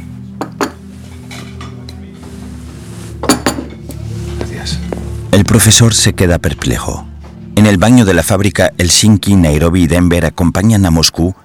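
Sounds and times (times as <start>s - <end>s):
dishes and cutlery clinking as a waiter serves a table: 0.4s - 2.1s, 3.2s - 4.0s
speech: 5.4s - 11.4s.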